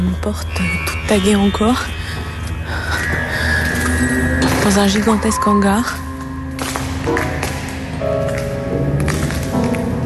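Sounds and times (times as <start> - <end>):
speech: 0.2 - 2.8, 4.6 - 6.0
footsteps on broken glass from smashed fluorescent ceiling tubes in an industrial hangar: 3.0 - 10.0.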